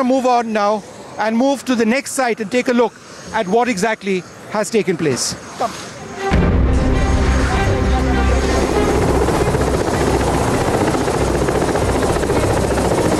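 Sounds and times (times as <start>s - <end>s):
speech: 0.0s - 5.9s
helicopter engine droning: 6.0s - 13.1s.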